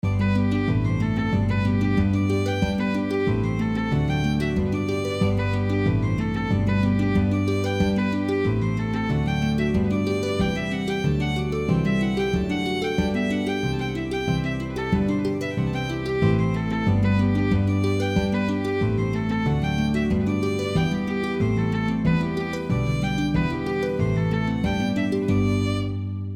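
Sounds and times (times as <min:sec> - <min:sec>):
house music drums: 0:00.0 - 0:25.5.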